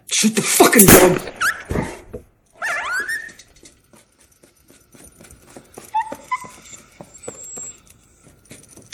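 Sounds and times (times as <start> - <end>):
speech: 0.1 - 1.5
wounded dog whimpering after being shot: 2.6 - 3.4, 5.8 - 8.0.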